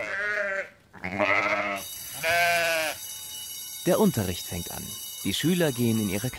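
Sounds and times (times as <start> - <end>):
several sheep bleating loudly: 0.0 - 3.1
speech: 3.9 - 6.3.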